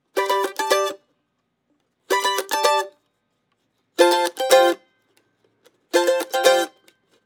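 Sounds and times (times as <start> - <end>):
mandolin loop: 0.1 - 1.0, 2.1 - 3.0, 4.0 - 4.8, 5.9 - 6.9.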